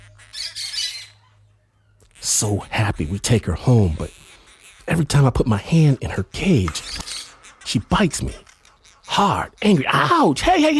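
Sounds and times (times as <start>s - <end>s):
parakeet squawking: 0.0s - 10.7s
speech: 2.4s - 4.3s, 4.9s - 6.9s, 7.7s - 8.4s, 9.2s - 10.7s.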